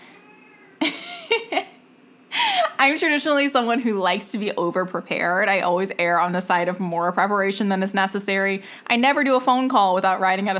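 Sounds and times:
faint hum: 0.0s - 10.5s
house cat meowing: 0.1s - 0.8s
speech: 2.8s - 10.5s.

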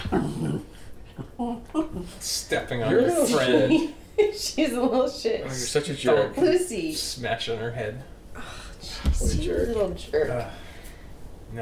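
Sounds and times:
dogs growling and whimpering while playing together: 0.0s - 2.2s
quiet noise: 0.0s - 11.5s
speech: 1.2s - 10.6s.

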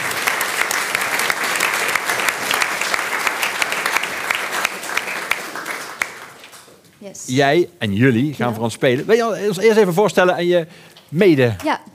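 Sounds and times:
audience applause welcoming musicians onto the stage: 0.0s - 6.7s
speech: 7.1s - 11.9s.

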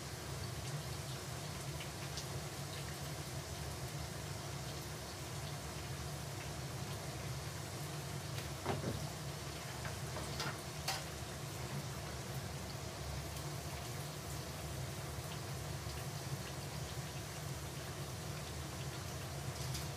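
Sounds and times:
food deep-frying in oil: 0.0s - 19.9s.

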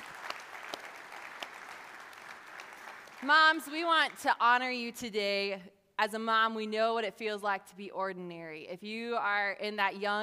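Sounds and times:
audience applause: 0.0s - 3.3s
speech: 3.2s - 10.2s.

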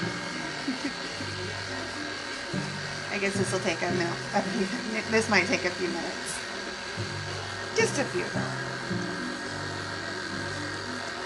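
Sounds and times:
stand mixer whisking clumped butter at low speed: 0.0s - 11.2s
speech: 3.2s - 6.4s, 7.8s - 9.0s.

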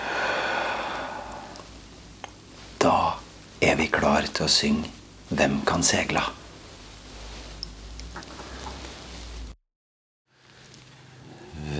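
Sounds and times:
deliberate exhale during a breathing exercise: 0.0s - 1.6s
speech: 3.7s - 6.4s.

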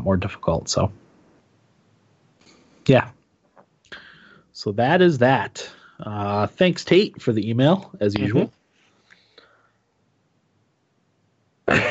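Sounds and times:
speech: 0.0s - 1.0s, 2.9s - 3.2s, 4.6s - 8.6s, 11.7s - 11.8s
soft breathy sounds: 2.4s - 2.9s, 3.9s - 4.6s, 5.6s - 6.1s, 8.7s - 9.9s
person coughing: 11.7s - 11.8s.

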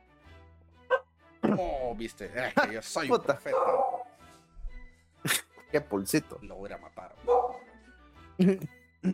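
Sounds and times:
speech: 1.5s - 4.0s, 5.7s - 7.6s, 8.4s - 9.1s
dog barking: 3.5s - 4.2s, 7.2s - 7.7s.

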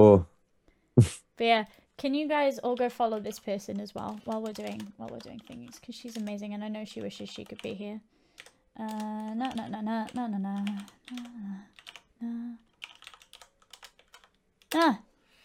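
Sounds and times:
speech: 0.0s - 0.3s, 1.0s - 8.2s, 8.8s - 12.7s, 14.7s - 15.1s
computer keyboard typing: 2.6s - 7.8s, 8.4s - 15.0s
person humming or vocalizing in short sustained tones: 8.8s - 12.6s.

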